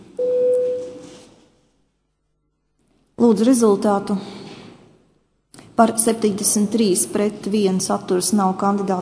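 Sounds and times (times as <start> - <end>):
electronic voting bell tone in the Latvian parliament: 0.2 - 1.2
speech: 3.3 - 4.4, 5.8 - 8.9.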